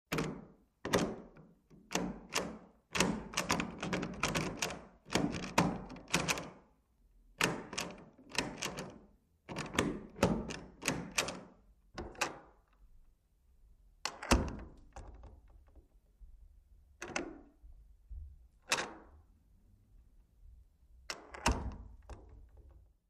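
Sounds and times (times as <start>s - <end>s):
door handle turning: 0.1s - 6.6s, 7.4s - 12.8s, 14.1s - 15.9s, 17.0s - 17.6s, 18.6s - 19.2s, 21.1s - 22.8s.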